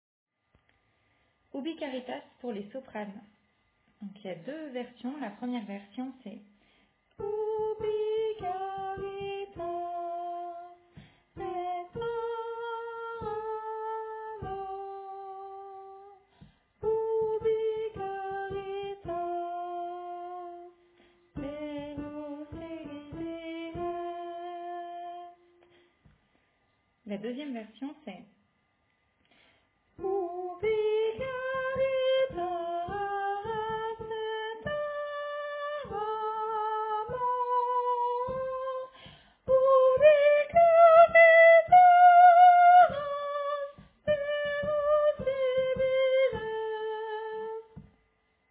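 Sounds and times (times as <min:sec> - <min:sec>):
soprano singing: 0:07.2 - 0:16.2, 0:16.8 - 0:25.6, 0:30.0 - 0:47.9.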